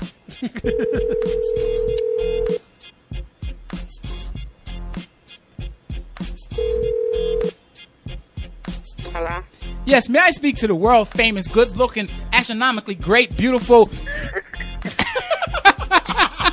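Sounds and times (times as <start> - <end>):
busy bed: 0.0 - 16.5
laughter: 0.3 - 1.2, 14.1 - 16.5
speech: 0.4 - 2.1, 9.9 - 14.1
outgoing call ringback tone through a phone line: 0.7 - 2.6, 6.5 - 7.6.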